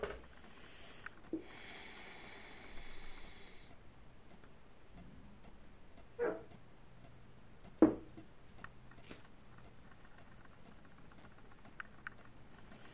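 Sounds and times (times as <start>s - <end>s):
low steady hum: 0.0s - 12.9s
dog woofs indoors: 6.2s - 6.5s.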